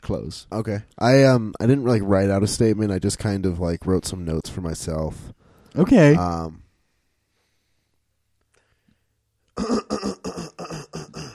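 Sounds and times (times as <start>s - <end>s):
speech: 0.1s - 6.6s, 9.6s - 10.1s
person clearing throat: 9.6s - 11.3s.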